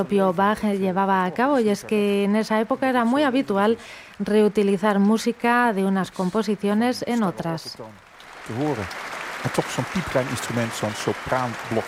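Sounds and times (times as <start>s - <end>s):
speech: 0.0s - 11.8s
enthusiastic applause from a big audience in a large concert hall after a recorder performance: 8.0s - 11.8s.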